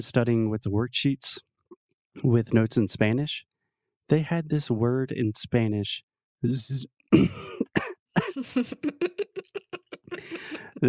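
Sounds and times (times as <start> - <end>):
laughter: 0.0 - 1.4, 2.2 - 3.4, 4.1 - 10.8
person murmuring while recovering: 0.0 - 1.4, 2.2 - 3.4, 4.1 - 10.8
speech: 0.0 - 1.5, 2.2 - 3.5, 4.1 - 7.6
person coughing: 6.5 - 8.6, 10.2 - 10.8
hacking coughs: 7.2 - 8.4.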